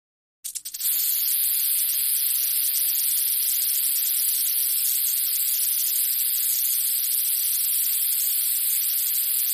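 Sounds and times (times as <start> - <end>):
rattlesnake rattle buzzing: 0.4 - 9.5.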